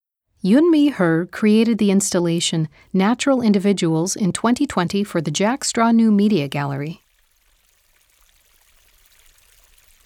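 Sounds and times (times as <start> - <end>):
speech: 0.4 - 7.0
small stream of running water trickling: 7.0 - 10.0.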